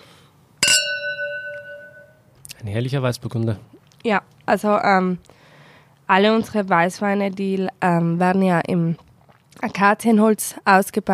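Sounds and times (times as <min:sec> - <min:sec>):
wine glasses clinking in a toast: 0:00.6 - 0:02.2
speech: 0:02.6 - 0:05.4, 0:06.1 - 0:09.0, 0:09.6 - 0:11.1.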